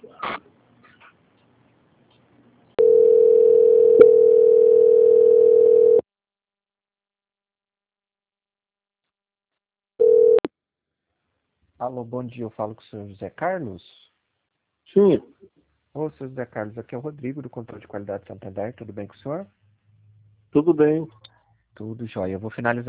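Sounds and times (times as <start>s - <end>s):
telephone line tone while a call is transferred: 2.8s - 6.0s, 10.0s - 10.5s
speech: 11.9s - 14.0s, 14.9s - 15.3s, 16.0s - 19.6s, 20.5s - 21.2s, 21.8s - 22.8s.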